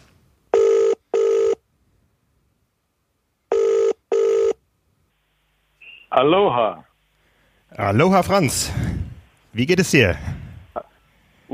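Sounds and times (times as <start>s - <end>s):
telephone ringback tone on an outgoing call: 0.5s - 1.6s, 3.5s - 4.6s
speech: 6.2s - 6.9s, 7.7s - 8.9s, 9.6s - 10.4s.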